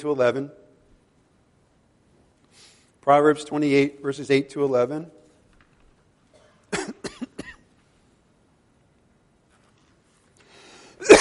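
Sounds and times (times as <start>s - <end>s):
speech: 0.0s - 0.6s, 3.0s - 5.2s
harsh coughs: 6.3s - 7.7s, 11.0s - 11.1s.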